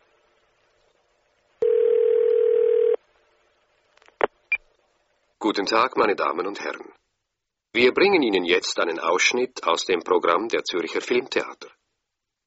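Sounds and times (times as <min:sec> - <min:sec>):
telephone line beeps calling a cinema information line: 0:01.6 - 0:03.0
speech: 0:05.5 - 0:07.0, 0:07.7 - 0:11.7.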